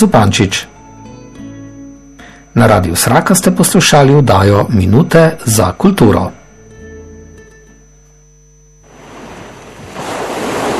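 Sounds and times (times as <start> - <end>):
speech: 0.0 - 0.7, 2.6 - 6.4
musical hum: 0.0 - 10.0
sea waves breaking on a shore: 8.9 - 10.7.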